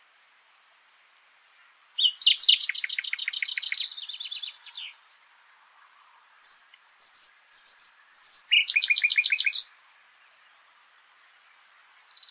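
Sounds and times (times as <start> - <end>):
Common nightingale song, Luscinia megarhynchos: 0.9 - 12.2.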